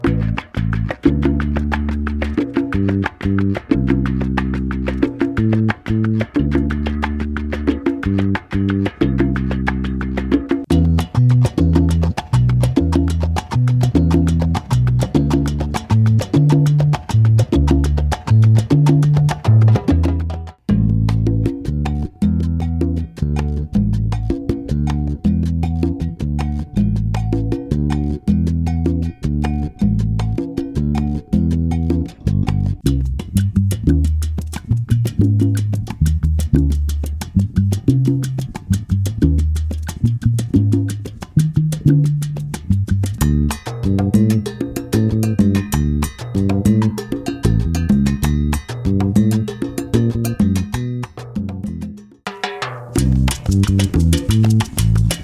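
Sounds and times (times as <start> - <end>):
Afro Cuban bass drum: 0.0 - 55.2.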